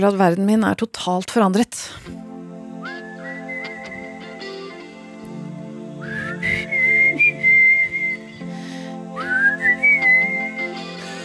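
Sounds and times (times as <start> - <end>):
speech: 0.0 - 2.2
steady instrumental backing music: 2.0 - 11.2
person whistling a melody: 2.8 - 4.8, 6.0 - 8.5, 9.2 - 11.2.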